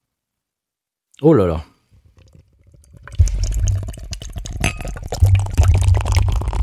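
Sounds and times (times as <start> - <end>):
speech: 1.2 - 1.7
beer pouring from a can into a glass and foaming: 2.0 - 6.6
brief glassy clink: 3.7 - 6.6.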